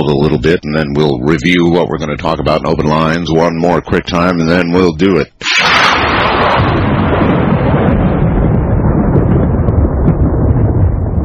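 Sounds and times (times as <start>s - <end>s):
speech: 0.0s - 5.8s
rumble of thunder: 5.7s - 11.2s.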